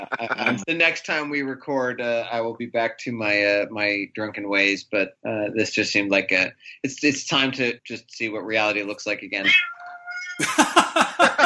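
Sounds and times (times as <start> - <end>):
laughter: 0.0 - 5.6, 10.4 - 11.4
speech: 0.0 - 9.7, 10.4 - 10.8
cat meowing loudly and insistently with harsh drawn-out yowls: 9.4 - 10.6.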